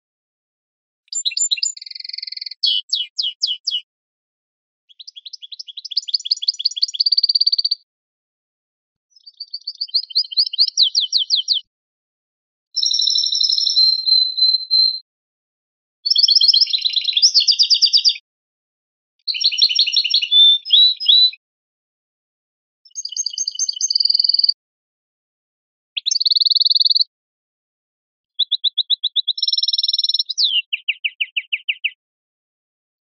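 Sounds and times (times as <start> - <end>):
canary singing campero notes: 1.1 - 3.8, 4.9 - 7.8, 9.2 - 11.7, 12.8 - 15.0, 16.1 - 18.2, 19.3 - 21.4, 22.9 - 24.6, 26.0 - 27.1, 28.4 - 32.0.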